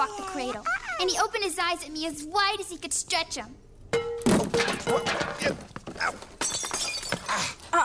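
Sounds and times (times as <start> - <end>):
speech: 0.0 - 3.7, 4.4 - 6.4, 7.3 - 7.8
water pitcher falling and breaking: 4.0 - 7.3.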